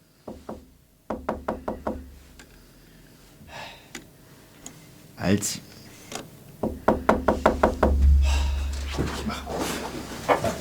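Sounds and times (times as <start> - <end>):
knocking on a locked door: 0.3 - 2.3, 6.6 - 10.4
speech: 5.2 - 5.7.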